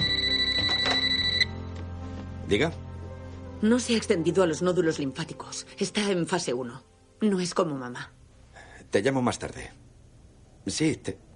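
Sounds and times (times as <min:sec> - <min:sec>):
telephone ringing with electronic trill: 0:00.0 - 0:01.7
speech: 0:02.5 - 0:02.8, 0:03.6 - 0:08.2, 0:08.9 - 0:09.8, 0:10.6 - 0:11.2.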